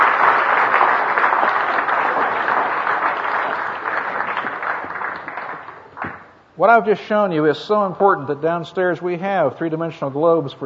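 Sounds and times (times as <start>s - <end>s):
audience applause: 0.0s - 6.4s
speech: 6.6s - 10.6s.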